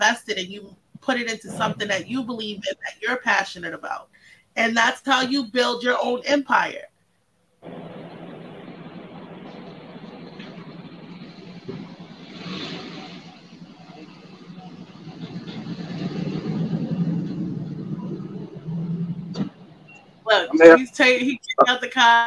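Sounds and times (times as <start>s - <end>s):
speech: 0.0s - 6.9s, 7.6s - 8.0s, 20.3s - 22.2s
car engine rumbling as the car pulls out: 1.4s - 2.6s, 7.6s - 20.8s.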